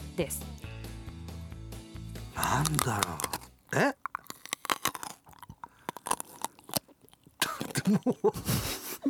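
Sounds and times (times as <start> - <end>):
speech: 0.2 - 0.6, 2.4 - 4.0, 7.9 - 9.0
crunchy bite and chewing of a cucumber: 2.2 - 9.0.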